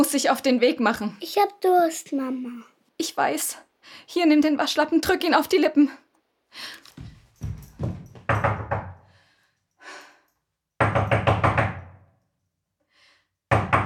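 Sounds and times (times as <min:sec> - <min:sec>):
speech: 0:00.0 - 0:07.1
faint thuds: 0:07.0 - 0:08.8
loud insistent knocking on a door: 0:07.4 - 0:09.1, 0:10.8 - 0:12.1, 0:13.5 - 0:13.8.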